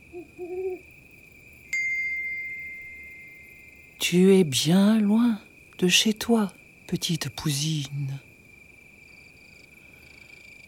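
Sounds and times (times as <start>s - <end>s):
owl hooting at dusk: 0.0s - 0.9s
bright ringing ping: 1.8s - 4.0s
steady high tone: 1.8s - 4.0s
speech: 4.0s - 8.3s.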